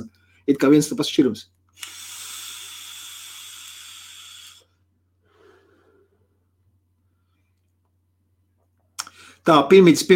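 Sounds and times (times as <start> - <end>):
speech: 0.5 - 2.0, 9.5 - 10.1
drawing on a rebuildable atomizer vape tank: 1.8 - 4.8
faint soft breathy sound: 5.2 - 7.6.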